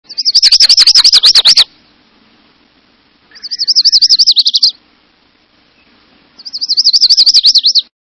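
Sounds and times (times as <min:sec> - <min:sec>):
Lucy's warbler: 0:00.0 - 0:02.0, 0:03.3 - 0:04.8, 0:05.7 - 0:07.9.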